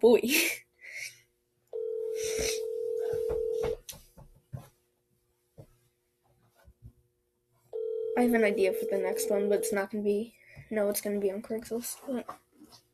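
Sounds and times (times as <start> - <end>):
speech: 0.0 - 0.6, 8.2 - 12.4
outgoing phone call ringback tone: 1.8 - 3.8, 7.8 - 9.8.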